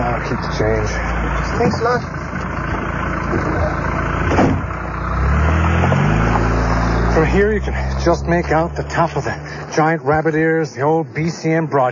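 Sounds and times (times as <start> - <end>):
car engine revving as the vehicle pulls away: 0.0 - 10.6
car engine idling: 0.0 - 11.9
speech: 0.3 - 2.2, 7.2 - 11.9.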